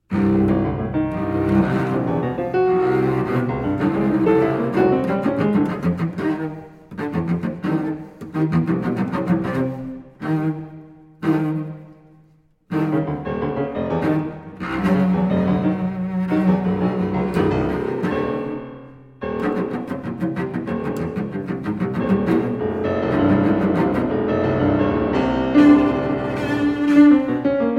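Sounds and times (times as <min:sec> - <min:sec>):
cello and piano sonata: 0:00.0 - 0:27.7.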